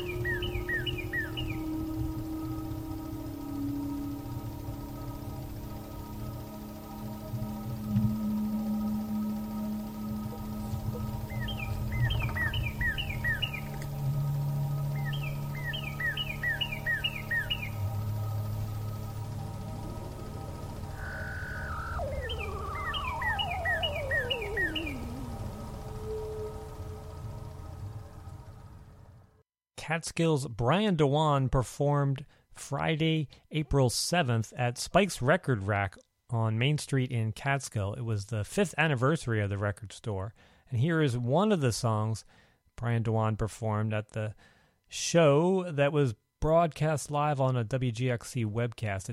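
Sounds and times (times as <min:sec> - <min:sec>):
faint bird sounds: 0:00.0 - 0:02.6, 0:10.3 - 0:14.0, 0:14.7 - 0:19.1, 0:20.1 - 0:28.8
woodpecker's sharp high calls: 0:00.0 - 0:02.6, 0:10.3 - 0:14.0, 0:14.8 - 0:19.0, 0:20.8 - 0:27.1
steady low outdoor rumble: 0:00.0 - 0:29.4
speech: 0:29.9 - 0:49.1.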